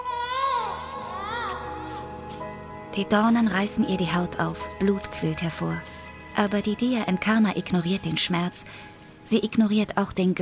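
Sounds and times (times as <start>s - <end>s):
baby wailing desperately: 0.0s - 2.0s
speech: 3.0s - 10.4s.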